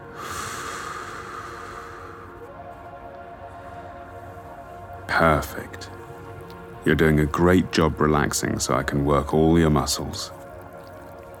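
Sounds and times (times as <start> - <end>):
deep inhale and exhale during a muscle massage: 0.0 - 2.6
speech: 5.1 - 5.9, 6.8 - 10.4.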